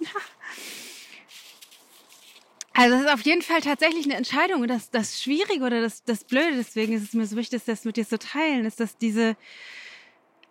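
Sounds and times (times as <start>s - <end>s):
laughter: 0.0s - 0.5s
footsteps rustling through frozen leaves on an organic farmer's field: 0.6s - 4.2s, 6.2s - 7.5s
speech: 2.8s - 9.8s.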